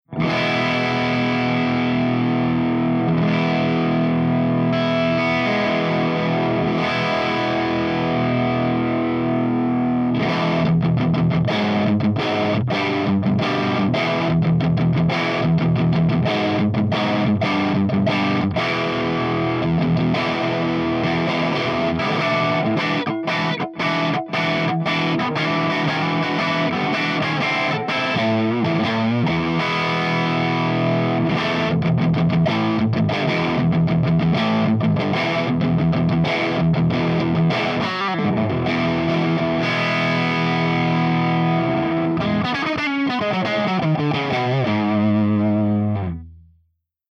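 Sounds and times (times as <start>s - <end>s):
electric guitar with P90 pickup through Mesa Studio crunch with V30 speaker: 0.0s - 46.4s.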